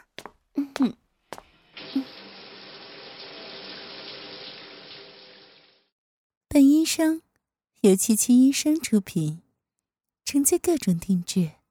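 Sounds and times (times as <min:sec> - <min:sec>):
speech: 0:00.6 - 0:01.0, 0:06.9 - 0:09.4, 0:10.3 - 0:11.6
water running to fill a bath: 0:01.5 - 0:05.9.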